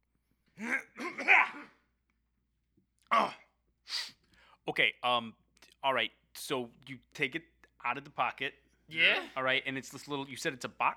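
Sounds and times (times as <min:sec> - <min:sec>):
person clearing throat: 0:00.6 - 0:01.8
speech: 0:04.7 - 0:10.9.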